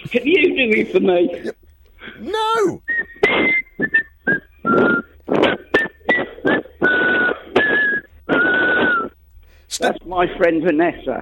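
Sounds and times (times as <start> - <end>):
speech: 0.1 - 1.6, 9.8 - 11.2
person whistling a tune: 2.9 - 5.2, 5.8 - 9.2.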